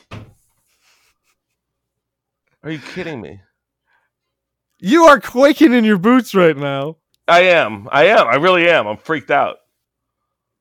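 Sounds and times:
door being closed: 0.0s - 0.5s
speech: 2.6s - 3.5s, 4.8s - 9.6s.

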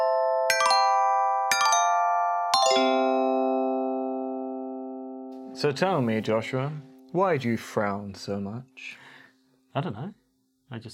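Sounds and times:
short three-note segment chime jingle with bell-like tones: 0.0s - 7.4s
speech: 5.6s - 9.0s, 9.8s - 10.9s.

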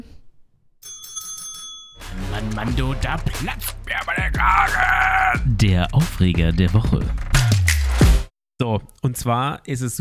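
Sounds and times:
bicycle bell ringing: 0.8s - 2.1s
speech: 2.4s - 7.4s, 8.6s - 9.9s.

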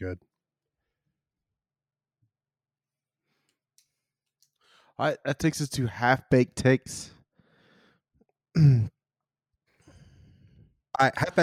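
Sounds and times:
speech: 0.0s - 0.3s, 5.0s - 7.2s, 8.6s - 9.0s, 11.0s - 11.4s
throat-clearing cough: 8.6s - 9.0s.

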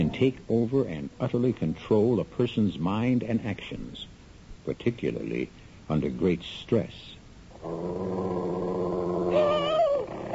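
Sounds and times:
wolf-like animal growling and snarling while attacking: 0.0s - 0.3s, 7.5s - 10.3s
speech: 0.0s - 4.1s, 4.7s - 9.5s.

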